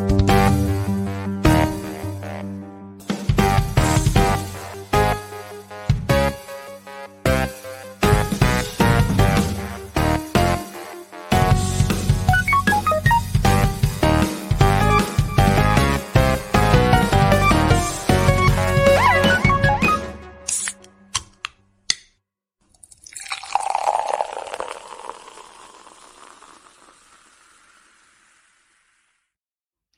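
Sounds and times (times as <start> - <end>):
upbeat instrumental podcast theme music: 0.0 - 21.5.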